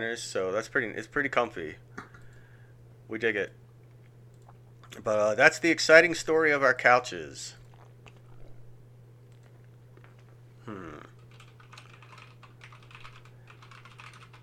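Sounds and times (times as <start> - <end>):
speech: 0.0 - 2.0, 3.1 - 3.6, 4.9 - 7.6
low hum: 1.5 - 11.3
typing notes on a computer keyboard: 11.2 - 14.4.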